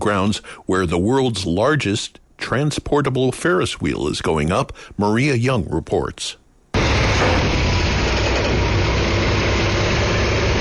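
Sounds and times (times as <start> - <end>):
speech: 0.0 - 6.4
18-wheeler heavy truck engine idling: 6.8 - 10.5.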